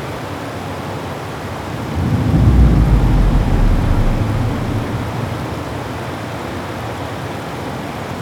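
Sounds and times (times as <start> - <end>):
rainstorm: 0.2 - 8.1
ocean ambience: 1.3 - 6.4.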